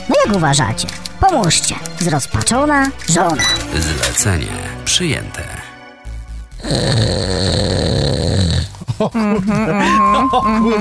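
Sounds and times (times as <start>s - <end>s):
speech: 0.2s - 5.6s, 6.6s - 10.8s
person loudly imitating rough rattling snoring: 6.6s - 8.9s.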